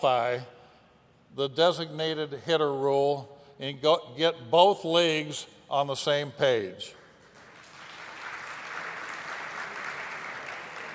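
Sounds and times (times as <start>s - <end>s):
speech: 0.0s - 0.6s, 1.3s - 7.0s
large audience clapping and cheering: 7.0s - 10.9s.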